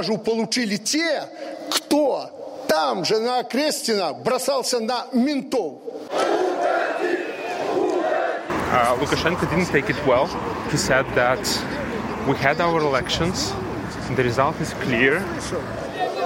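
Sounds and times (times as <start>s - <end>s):
speech: 0.0s - 6.4s, 8.7s - 15.8s
large crowd chanting a short phrase in unison: 6.0s - 10.7s, 15.4s - 16.2s
crowd whistling: 6.1s - 8.1s.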